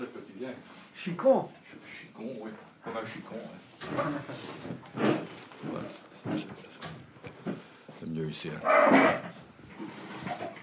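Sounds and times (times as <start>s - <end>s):
speech: 0.4s - 7.0s, 8.1s - 9.4s
dog growling and grunting: 8.6s - 9.4s.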